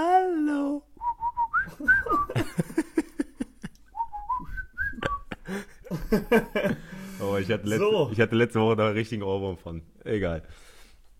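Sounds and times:
person whistling a short lilting tune: 1.0 - 2.4, 4.0 - 5.3
laughter: 1.7 - 3.8, 4.8 - 7.4
speech: 6.1 - 6.8, 7.4 - 10.7
soft breathy sounds: 6.7 - 7.4, 10.4 - 11.1.

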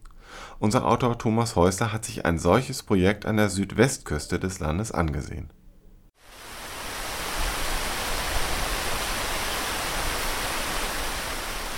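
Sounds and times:
speech: 0.6 - 5.6
heavy monsoon rain pouring down: 6.2 - 11.7.

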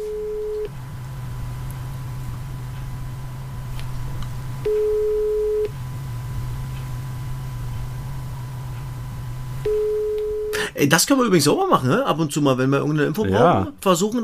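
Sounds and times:
telephone ringback tone heard through the line: 0.0 - 0.7, 4.6 - 5.7, 9.6 - 10.6
constant low hum on the telephone line: 0.0 - 13.8
speech: 10.8 - 14.2.

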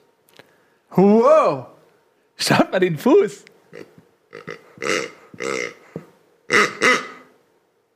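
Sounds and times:
speech: 0.9 - 1.7, 2.4 - 5.8
snorting pig-like grunts imitated with a small spoon: 3.7 - 7.3.

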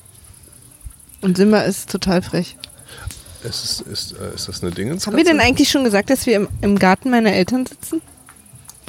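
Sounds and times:
crickets chirping in a garden: 0.0 - 8.8
speech: 1.2 - 8.1.

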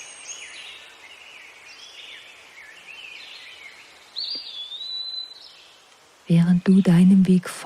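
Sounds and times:
birds chirping and trilling in a forest: 0.0 - 7.6
bright bird whistle in a forest: 4.2 - 5.6
speech: 6.3 - 7.6.

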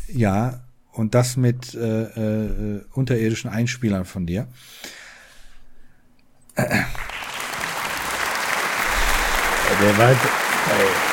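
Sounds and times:
speech: 0.1 - 5.0, 6.6 - 7.1, 9.8 - 11.1
slow applause: 6.8 - 11.1.

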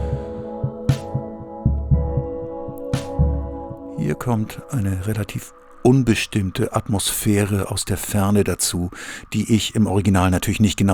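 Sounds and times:
slow throbbing low pulse: 0.0 - 4.5
sustained distorted keyboard chords: 0.0 - 7.0
speech: 4.1 - 10.9.

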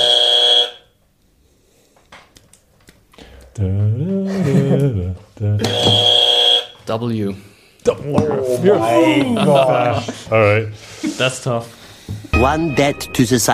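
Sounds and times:
harsh loud game show buzzer: 0.0 - 0.8, 5.6 - 6.8
wordless wavering vocal sound: 3.6 - 5.6
speech: 3.6 - 6.1, 6.9 - 13.5
laughter: 4.0 - 5.9, 8.4 - 11.4.

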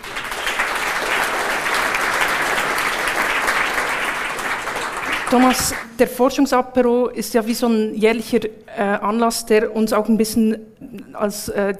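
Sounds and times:
audience applause: 0.0 - 5.9
speech: 5.3 - 11.7.

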